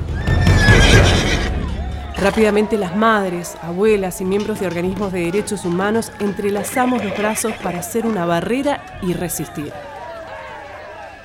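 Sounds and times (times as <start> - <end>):
mounted police horse neighing: 0.0 - 1.7, 6.2 - 7.8
crowd noise and rumble: 0.0 - 11.2
hooves of mounted police clattering: 0.0 - 11.2
speech: 2.2 - 9.9.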